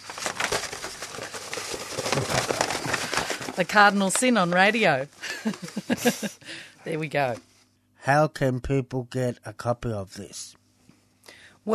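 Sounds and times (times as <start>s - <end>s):
sharp crisp snaps of a large paper poster being rolled up: 0.0s - 4.3s
large paper poster rustling and crackling as it is rolled up: 0.0s - 5.9s
speech: 3.6s - 10.6s
laughter: 5.2s - 6.4s.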